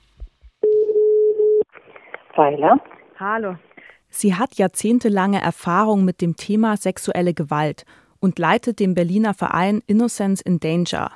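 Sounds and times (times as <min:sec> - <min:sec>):
ringback tone of an outgoing telephone call: 0:00.6 - 0:01.6
speech: 0:02.4 - 0:11.1.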